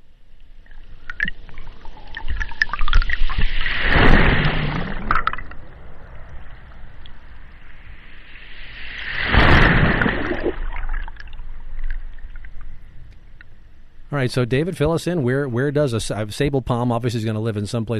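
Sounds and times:
faint underwater clicks: 0.3s - 3.6s, 11.0s - 13.8s
bubbly underwater wash: 0.6s - 6.6s, 9.1s - 12.6s
underwater ocean water surges by palm roots: 1.1s - 12.4s
speech: 14.2s - 17.9s.

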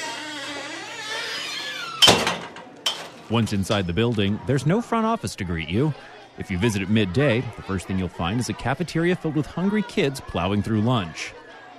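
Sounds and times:
old school front door creaking open: 0.0s - 3.3s
speech: 3.3s - 11.4s.

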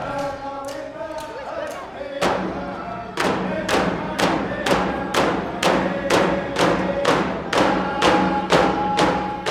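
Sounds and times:
group of voices singing: 0.0s - 9.4s
man striking a drum on stage: 2.2s - 9.4s.

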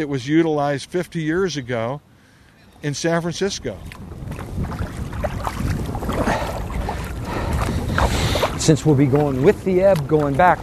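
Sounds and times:
speech: 0.0s - 2.1s, 2.8s - 4.7s, 8.6s - 10.6s
paddles dipping and splashing as two people paddle a small boat: 1.5s - 10.6s
low rumble of wind buffeting the microphone: 3.1s - 10.6s.

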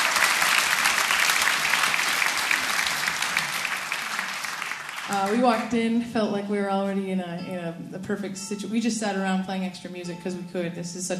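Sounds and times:
crowd applauding: 0.0s - 5.9s
speech: 5.1s - 11.1s.

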